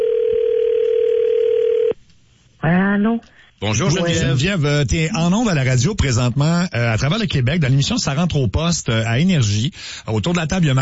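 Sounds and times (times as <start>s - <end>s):
telephone dial tone as a call is placed: 0.0s - 2.0s
speech: 3.0s - 10.8s.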